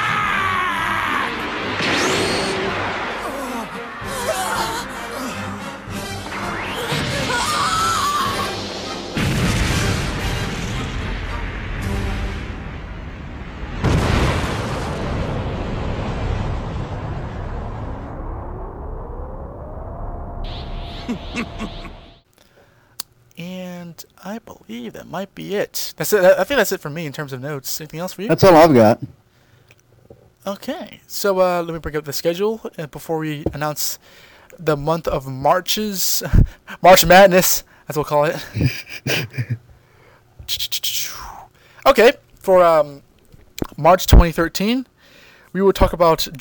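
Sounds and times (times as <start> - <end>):
shrill scream: 0.0 - 8.8
high whine: 0.0 - 14.0, 16.0 - 22.2
booming explosion: 0.0 - 22.2
cartoon energy blast with rising sweeping whooshes: 0.2 - 10.8, 20.4 - 22.2
laughter: 3.2 - 5.7, 20.9 - 22.2, 38.4 - 39.6
speech: 24.7 - 29.2, 30.4 - 39.6, 40.5 - 43.0, 43.8 - 44.9, 45.5 - 46.3.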